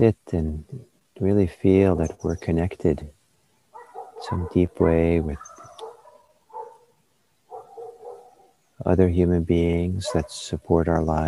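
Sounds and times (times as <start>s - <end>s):
speech: 0.0s - 3.2s, 4.2s - 5.5s, 8.8s - 11.2s
dog barking: 3.8s - 6.9s, 7.5s - 8.5s, 10.0s - 10.4s.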